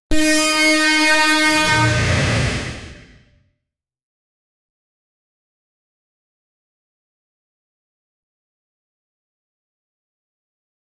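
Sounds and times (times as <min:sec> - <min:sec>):
viking war horn blowing: 0:00.1 - 0:02.7.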